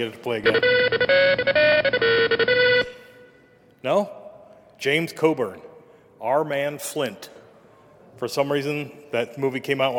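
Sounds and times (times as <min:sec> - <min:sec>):
speech: 0:00.0 - 0:02.9, 0:03.8 - 0:04.2, 0:04.8 - 0:07.4, 0:08.2 - 0:09.9
phone ringtone with a quick electronic melody of buzzy tones: 0:00.5 - 0:03.4.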